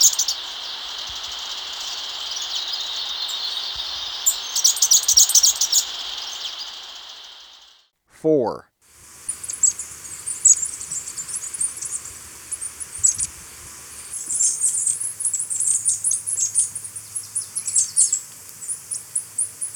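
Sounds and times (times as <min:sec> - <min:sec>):
cinereous conebill giving thin very high chips and twitters in Ecuador: 0:00.0 - 0:07.9, 0:09.3 - 0:19.7
speech: 0:08.2 - 0:08.7.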